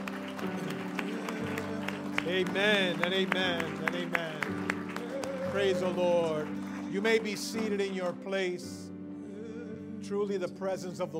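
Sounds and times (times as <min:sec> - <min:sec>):
large audience clapping hands: 0:00.0 - 0:08.2
speech: 0:02.3 - 0:04.3, 0:05.5 - 0:08.8, 0:10.1 - 0:11.1.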